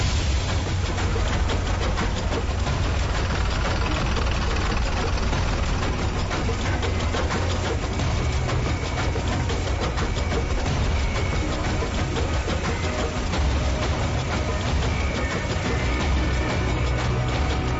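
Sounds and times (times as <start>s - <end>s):
bus engine idling: 0.0s - 17.7s.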